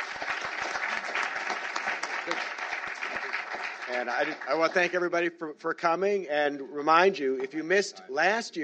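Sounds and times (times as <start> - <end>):
audience applause for a speaker at a symposium: 0.0 - 5.0
speech: 3.9 - 8.6.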